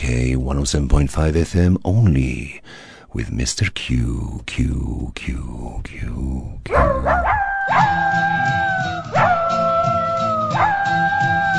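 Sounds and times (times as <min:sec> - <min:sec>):
speech: 0:00.1 - 0:08.6
dogs howling: 0:06.7 - 0:11.5.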